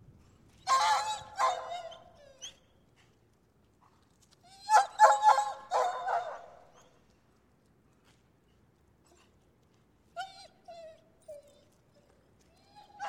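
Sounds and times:
shepherd dog yelping: 0.7s - 2.5s, 4.6s - 6.5s, 12.6s - 13.0s.

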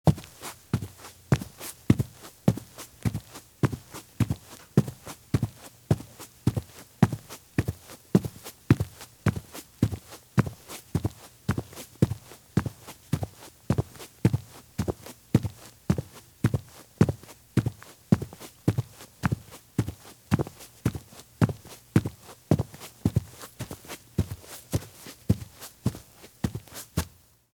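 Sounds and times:
men's business shoes walking at a very fast pace on grass: 0.1s - 27.2s.

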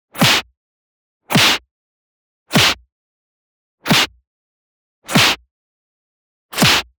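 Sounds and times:
punch slap hit: 0.2s - 0.5s, 1.3s - 1.6s, 2.5s - 2.8s, 3.9s - 4.1s, 5.1s - 5.4s, 6.6s - 6.9s.

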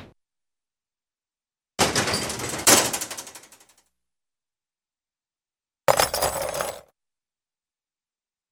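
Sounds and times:
cartoon metallic ringout thump rattle ratchet bang: 1.8s - 3.6s, 5.9s - 6.8s.

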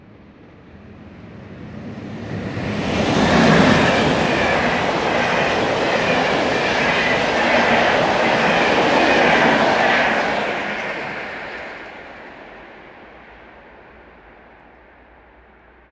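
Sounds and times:
train passing fast: 0.0s - 15.8s.

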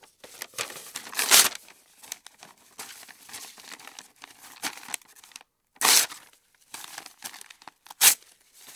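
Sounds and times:
paper moving at home or office: 0.3s - 1.6s, 5.8s - 6.2s, 7.3s - 8.2s.

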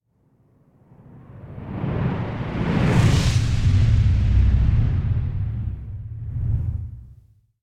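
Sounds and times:
whoosh of something flying: 1.4s - 7.4s
explosion: 2.3s - 7.2s.

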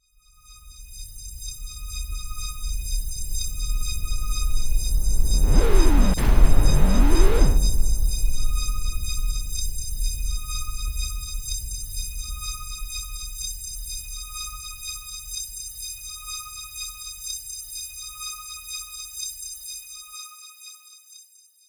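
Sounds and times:
reversed boom: 2.6s - 11.5s.

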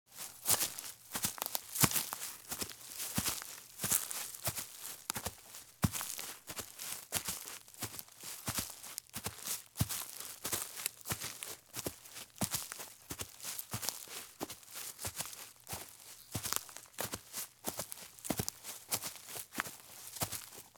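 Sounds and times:
light shoes walking at fast pace in forest: 0.2s - 20.4s.

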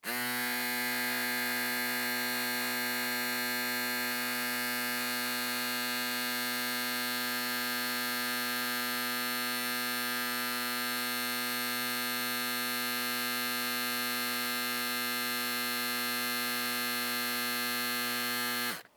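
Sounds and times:
electric shaver: 0.0s - 18.9s.

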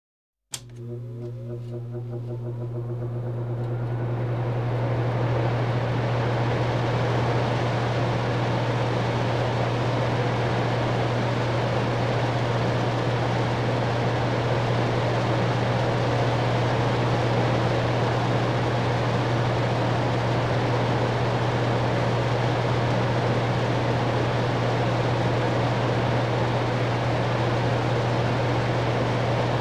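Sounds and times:
air conditioning: 0.5s - 29.5s.

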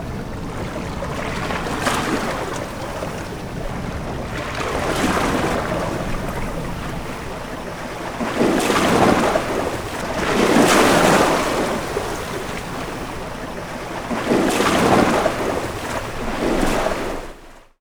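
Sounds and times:
waves against a sailing ship: 0.0s - 17.7s.

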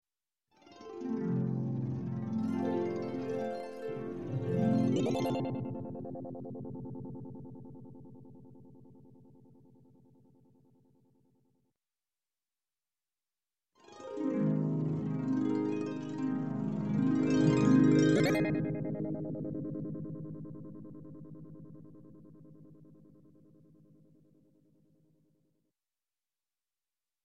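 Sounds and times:
harp arpeggio with tremolo ending: 0.9s - 6.2s, 14.0s - 18.9s.

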